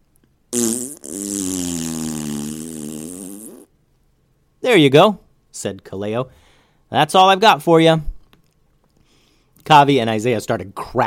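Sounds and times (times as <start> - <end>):
loud long buzzing fart ripped into a bag: 0.5 - 3.7
speech: 4.7 - 8.1, 9.6 - 11.0.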